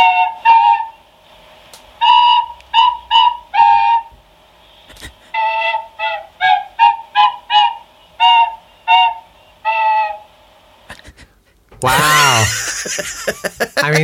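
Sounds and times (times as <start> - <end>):
tin whistle and recorder played through nostrils: 0.0 - 1.1, 2.0 - 4.2, 5.3 - 10.4
laughter: 4.9 - 5.4, 11.8 - 14.0
speech: 13.0 - 14.0.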